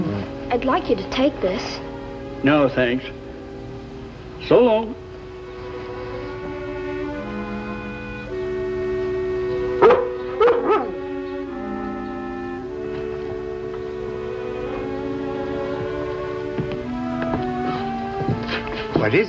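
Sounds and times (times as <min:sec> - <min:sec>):
orchestral music: 0:00.0 - 0:19.2
speech: 0:00.5 - 0:03.2, 0:04.4 - 0:05.0, 0:19.1 - 0:19.2
dog barking: 0:09.8 - 0:11.0.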